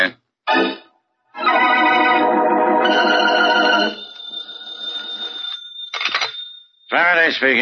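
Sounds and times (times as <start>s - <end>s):
telephone bell ringing: 1.4s - 7.4s
speech: 7.3s - 7.6s.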